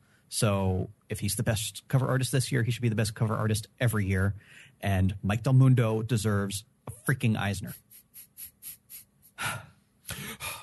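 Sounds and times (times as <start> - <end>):
speech: 0.3 - 7.8
person taking a deep breath: 4.4 - 4.8, 9.4 - 10.6.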